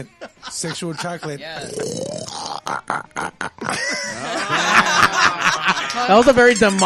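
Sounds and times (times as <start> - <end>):
speech: 0.0 - 4.3, 6.0 - 6.8
laughter: 0.0 - 6.6
person imitating a pig call with grunts and squealing oink: 1.4 - 3.9.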